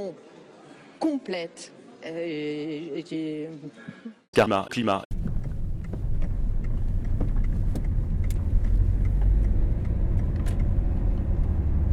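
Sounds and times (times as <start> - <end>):
speech: 0.0 - 0.4, 1.0 - 5.2
faint clicks and rattles: 5.1 - 11.6
car engine drone heard from inside the cabin: 5.1 - 11.9
road noise heard from inside the car cabin: 5.1 - 11.9.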